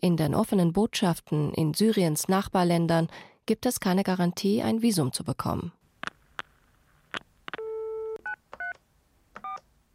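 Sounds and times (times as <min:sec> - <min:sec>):
speech: 0:00.0 - 0:05.8
telephone keypad tones as a number is dialed: 0:07.5 - 0:08.8, 0:09.4 - 0:09.6.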